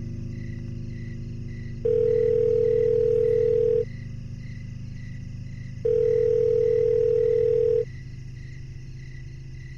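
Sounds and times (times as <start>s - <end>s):
constant low hum: 0.0s - 9.7s
telephone ringback tone purring: 1.8s - 3.8s, 5.8s - 7.9s.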